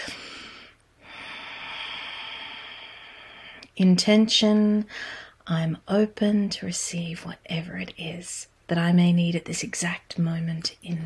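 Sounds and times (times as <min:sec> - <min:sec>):
deep breathing down into the belly during a grounding exercise: 0:00.0 - 0:03.7
speech: 0:03.8 - 0:11.0.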